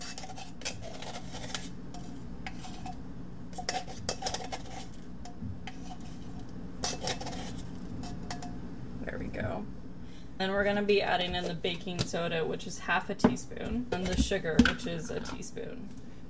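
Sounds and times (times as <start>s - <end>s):
spoon clinking and scraping against a bowl of cake batter: 0.0s - 5.0s, 5.7s - 8.5s
speech: 10.4s - 16.2s.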